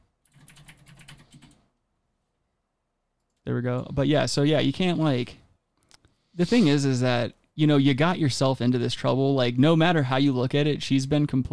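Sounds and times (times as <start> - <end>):
rapid keyboard typing of a message: 0.2 - 1.7
speech: 3.5 - 5.4, 6.4 - 11.5.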